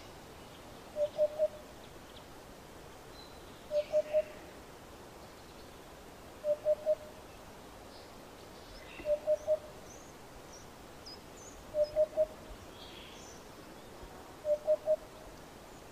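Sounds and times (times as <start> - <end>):
small birds chirping faintly in the background: 0.0 - 15.9
Eurasian hoopoe repeating soft hollow three-note oop-oop-oop phrases: 0.9 - 1.7, 3.7 - 4.4, 6.4 - 7.2, 8.9 - 9.7, 11.7 - 12.6, 14.4 - 15.3.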